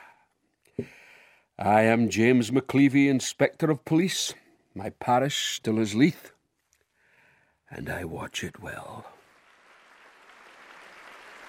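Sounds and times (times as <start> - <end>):
speech: 1.6 - 6.4, 7.7 - 9.2
crowd applauding: 9.2 - 11.4.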